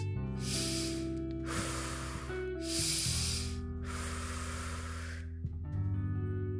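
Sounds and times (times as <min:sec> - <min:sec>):
short rapid breaths: 0:00.0 - 0:05.3
soft steady musical drone: 0:00.0 - 0:06.5.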